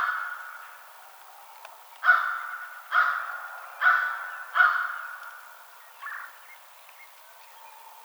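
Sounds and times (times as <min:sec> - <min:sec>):
American crow cawing: 0:02.0 - 0:05.2.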